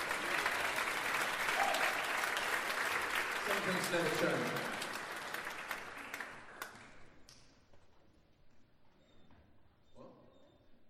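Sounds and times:
audience applause: 0.0 - 7.2
speech: 3.7 - 4.8.

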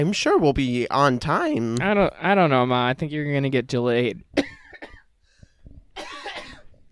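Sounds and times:
speech: 0.0 - 4.5
harsh raspy coughing close to the mic: 4.4 - 5.1, 6.0 - 6.8.

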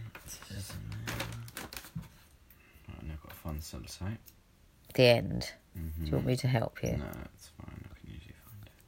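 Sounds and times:
paper rustling: 0.2 - 2.3
speech: 3.7 - 4.4, 4.9 - 7.7.

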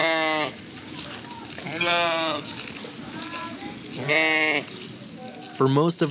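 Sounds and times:
ram bleating: 0.0 - 0.6, 1.6 - 2.6, 3.9 - 4.8
quieter murmuring: 0.0 - 5.6
farmyard background: 0.0 - 6.0
speech: 4.1 - 4.8, 5.6 - 6.0.

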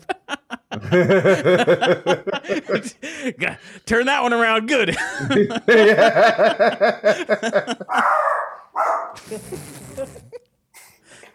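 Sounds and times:
laughter: 0.0 - 3.3, 4.9 - 8.4
speech: 0.9 - 8.4, 9.2 - 10.3
dog barking: 7.9 - 9.2.

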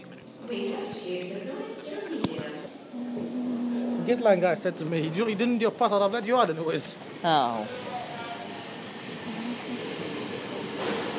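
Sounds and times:
speech: 0.5 - 3.4, 4.1 - 7.9
high-speed train rushing: 2.8 - 11.1.

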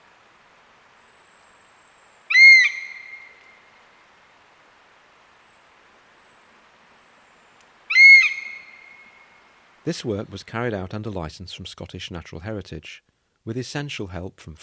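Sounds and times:
adult female European honey buzzard alarm calls perched in a tree: 2.3 - 3.4, 7.9 - 9.0
speech: 9.8 - 14.6.

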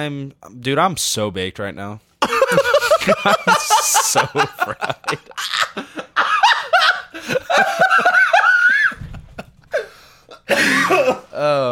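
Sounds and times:
speech: 0.0 - 5.8
laughter: 2.2 - 11.0
person coughing loud and harsh: 10.5 - 11.5.

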